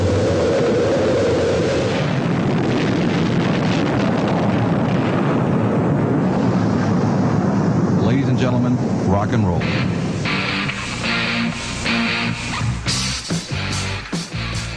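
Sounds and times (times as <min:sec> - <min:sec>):
rocket engine roar: 0:00.0 - 0:14.7
speech: 0:08.7 - 0:10.0.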